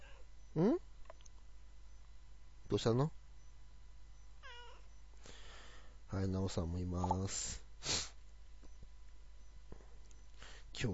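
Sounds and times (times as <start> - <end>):
steady low hum: 0.0 - 10.9
speech: 2.7 - 3.2, 6.2 - 8.0
former stray cat meowing: 4.4 - 4.9.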